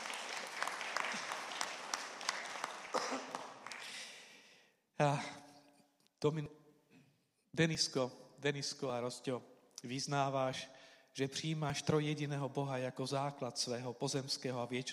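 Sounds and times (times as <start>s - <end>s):
church congregation applauding a boy preparing for baptism: 0.0s - 4.3s
speech: 5.0s - 5.4s, 6.2s - 6.6s, 7.6s - 14.9s.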